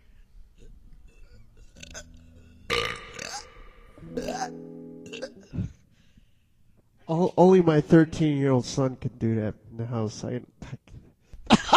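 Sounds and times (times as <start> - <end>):
person burping after drinking beer in a burping contest: 0.6 - 5.8
speech: 7.1 - 10.5.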